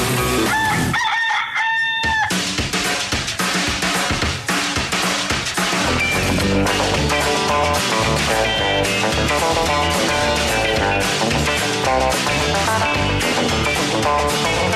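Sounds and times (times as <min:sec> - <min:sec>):
dense steady music: 0:00.0 - 0:01.0, 0:02.0 - 0:14.7
rooster crowing: 0:00.4 - 0:02.5.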